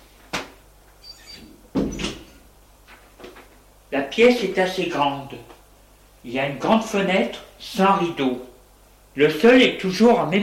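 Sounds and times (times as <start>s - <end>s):
door opening with a soft creak and thud: 1.0s - 2.4s
faint rustling and shuffling movements: 2.8s - 3.8s
speech: 3.9s - 5.5s, 6.2s - 8.5s, 9.2s - 10.4s.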